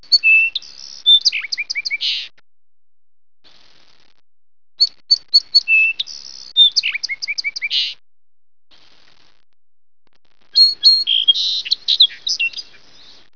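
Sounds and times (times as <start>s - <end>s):
song sparrow singing: 0.0s - 2.3s, 4.8s - 8.0s, 10.6s - 13.3s.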